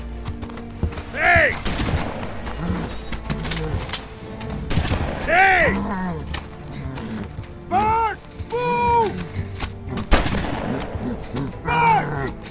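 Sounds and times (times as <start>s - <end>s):
people shouting: 1.0s - 1.6s, 5.2s - 6.4s, 7.6s - 10.1s, 11.0s - 12.4s
gunshot fired at the face of a charging creature: 1.6s - 2.4s, 4.7s - 5.3s, 10.1s - 11.1s.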